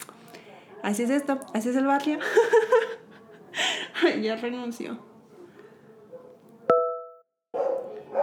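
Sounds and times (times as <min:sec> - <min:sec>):
low murmur in a city neighbourhood: 0:00.0 - 0:06.7
speech: 0:00.8 - 0:03.0, 0:04.0 - 0:05.1
laughter: 0:02.2 - 0:04.1
pet dog barking in a city neighbourhood: 0:06.1 - 0:06.4, 0:07.5 - 0:08.2.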